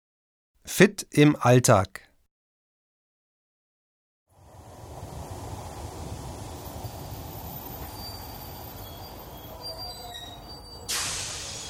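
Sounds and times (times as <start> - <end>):
speech: 0.7 - 2.0
train rumbling: 4.5 - 10.3
faint high train wheel squeals: 7.3 - 11.6
burst of hissing air as the train halts: 10.9 - 11.6.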